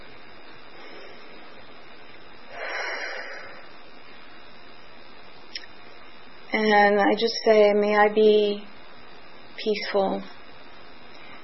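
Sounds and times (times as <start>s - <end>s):
deep breath taken with hands on the heart: 0.7s - 1.6s, 2.5s - 3.8s
speech: 6.5s - 8.7s, 9.6s - 10.4s.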